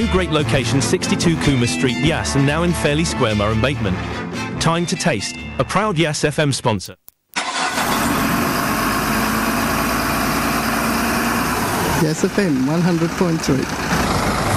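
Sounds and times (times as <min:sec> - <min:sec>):
heavy truck engines idling: 0:00.0 - 0:03.2, 0:07.4 - 0:14.5
speech: 0:00.0 - 0:07.0, 0:12.0 - 0:14.0.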